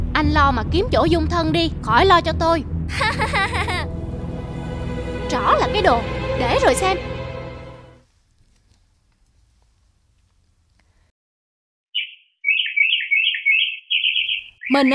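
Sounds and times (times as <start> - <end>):
speech: 0.2 - 4.0, 5.3 - 7.1, 14.7 - 14.9
laughter: 2.9 - 3.9
small pet songbirds chirping: 11.9 - 14.9.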